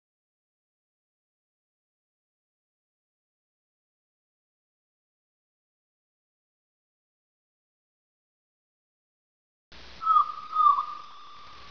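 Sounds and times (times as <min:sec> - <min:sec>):
gull calling: 0:10.0 - 0:11.6.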